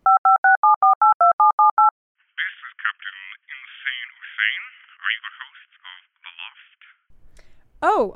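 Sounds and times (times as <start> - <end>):
touch-tone dialing beeps as a phone number is keyed in: 0.1 - 1.9
speech: 7.9 - 8.1.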